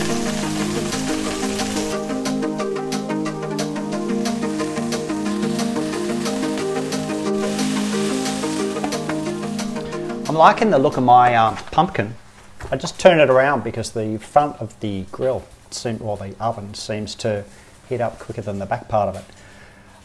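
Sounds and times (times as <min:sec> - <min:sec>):
frying pan of Asian greens sizzling and crackling: 0:00.0 - 0:12.1
speech: 0:10.4 - 0:19.4.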